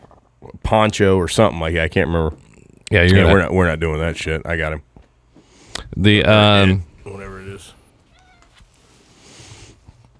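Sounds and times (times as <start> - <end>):
speech: 0.7 - 4.9, 5.9 - 6.9
cat meowing with a raspy cry: 8.1 - 8.6.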